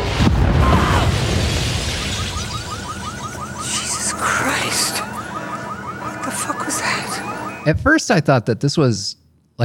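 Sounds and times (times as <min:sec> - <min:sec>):
bomb explosion sound effect: 0:00.0 - 0:03.3
crackles: 0:00.0 - 0:07.6
speech: 0:07.6 - 0:09.6.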